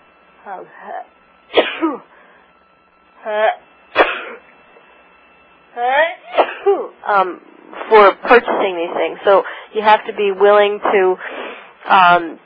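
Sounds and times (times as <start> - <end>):
speech: 0.4 - 2.2, 3.2 - 3.7, 5.8 - 12.4
person sneezing: 1.6 - 2.0, 4.0 - 4.4, 6.3 - 6.8.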